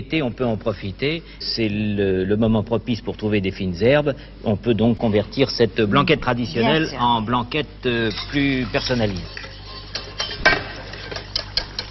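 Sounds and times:
speech: 0.0 - 9.4
spoon clinking against a pot of blanquette sauce: 8.0 - 11.8.

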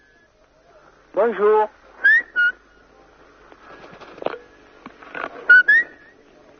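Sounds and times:
speech: 1.2 - 1.8
pet bird whistling: 2.1 - 2.6, 5.5 - 6.1.

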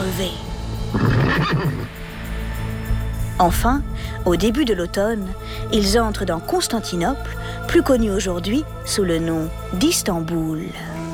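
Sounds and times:
speech: 0.1 - 2.1, 3.4 - 11.0
horse neighing loudly in hot weather: 1.0 - 1.9.

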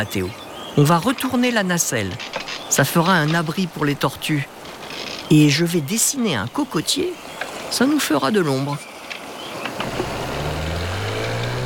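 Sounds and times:
speech: 0.0 - 4.6, 5.3 - 8.9
outboard motorboat engine approaching: 9.8 - 11.6.

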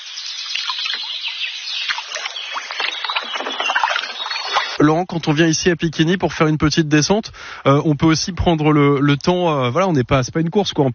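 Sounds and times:
canoe paddles stroking river water: 0.4 - 4.8
speech: 4.8 - 10.9.

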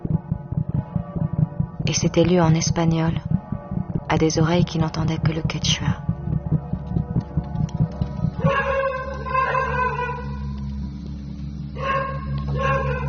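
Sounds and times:
low steady hum: 0.0 - 13.0
speech: 1.8 - 3.3, 4.1 - 6.0
dogs barking: 8.4 - 10.4, 11.8 - 13.0.

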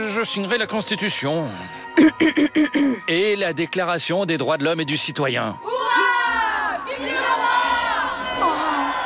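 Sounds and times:
speech: 0.2 - 6.0
large crowd cheering, shouting and whooping: 5.8 - 9.0.

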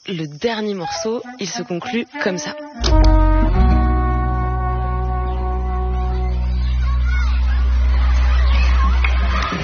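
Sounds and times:
speech: 0.1 - 3.2
people chattering at a beach: 2.9 - 9.6
children murmuring in a schoolyard: 4.6 - 9.6.

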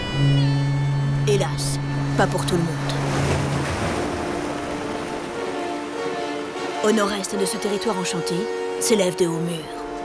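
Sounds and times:
speech: 0.2 - 0.5, 1.3 - 2.9, 6.8 - 9.8
waves breaking against towering sea cliffs: 2.7 - 7.0.

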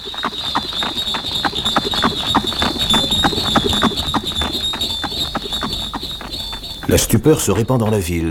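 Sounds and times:
hooves of horse-drawn coach clattering: 0.0 - 8.2
speech: 6.9 - 8.2.

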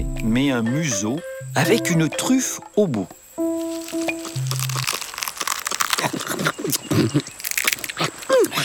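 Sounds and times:
speech: 0.2 - 3.2, 7.0 - 7.3
lemur chewing and tearing tough leaves and tamarind pods: 3.6 - 8.6.

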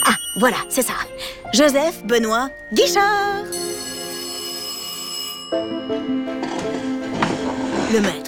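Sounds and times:
doorbell ringing with bright metallic tones: 0.0 - 1.2, 3.5 - 7.4
second fuller doorbell chime: 0.0 - 1.9, 2.7 - 7.0
speech: 0.4 - 3.6, 7.9 - 8.2.

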